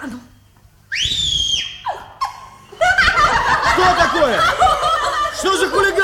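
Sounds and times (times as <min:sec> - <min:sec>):
shrill whistle: 0:00.9 - 0:03.1
laughter: 0:01.9 - 0:06.0.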